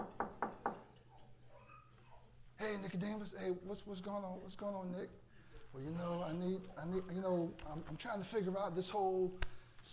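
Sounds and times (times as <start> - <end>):
knocking on a door: 0.0 - 0.9
speech: 2.6 - 9.9.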